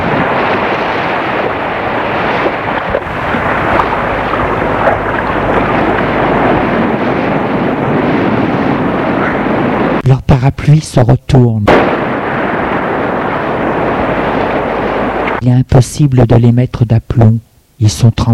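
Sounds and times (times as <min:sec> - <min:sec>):
low thunder-like booms in a storm: 0:00.0 - 0:10.1, 0:11.7 - 0:15.4
storm with powerful wind gusts buffeting the microphone: 0:00.0 - 0:15.4
speech: 0:10.8 - 0:11.8, 0:15.4 - 0:18.3.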